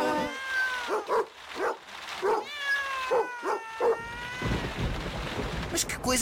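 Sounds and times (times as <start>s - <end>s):
several cats meowing: 0.0s - 1.2s, 2.2s - 5.0s
short dog barks: 0.9s - 2.5s
speech: 5.8s - 6.2s.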